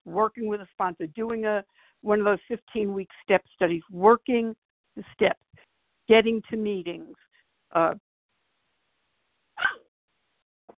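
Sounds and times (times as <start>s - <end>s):
speech: 0.1s - 5.4s, 6.1s - 8.0s
dog barking in a small apartment: 9.6s - 9.8s.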